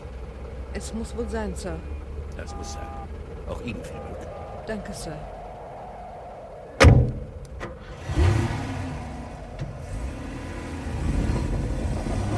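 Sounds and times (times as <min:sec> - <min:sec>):
vehicle engine rumbling while driving out onto ice: 0:00.0 - 0:12.3
speech: 0:00.8 - 0:05.4
sharp thud: 0:06.8 - 0:07.8.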